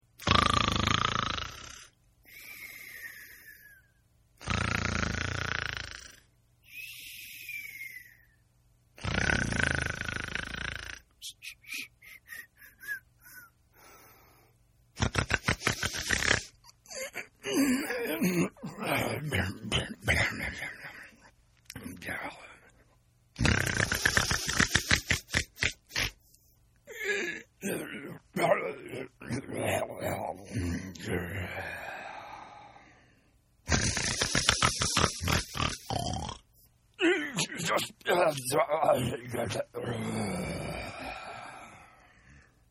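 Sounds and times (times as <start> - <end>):
human cartoon snoring: 0.2 - 2.0, 4.4 - 6.3, 9.0 - 11.1, 15.0 - 20.8, 23.4 - 26.2, 26.9 - 32.8, 33.7 - 41.9.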